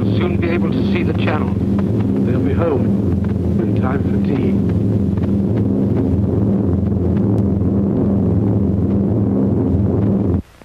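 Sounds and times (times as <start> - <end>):
squadron of Fortress bombers' piston engines droning overhead: 0.0 - 10.6
speech: 0.2 - 5.0.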